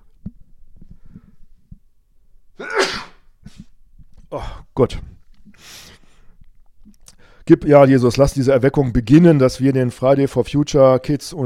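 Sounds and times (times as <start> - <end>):
quiet breathing: 0.8 - 1.8, 3.5 - 7.5
person sneezing: 2.6 - 3.7
speech: 4.3 - 5.1, 7.5 - 11.4.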